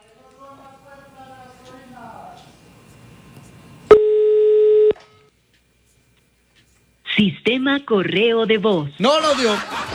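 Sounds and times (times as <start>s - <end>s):
telephone ringing tone while a call is being placed: 3.9s - 5.3s
speech: 7.2s - 9.9s
laughter: 9.1s - 9.9s.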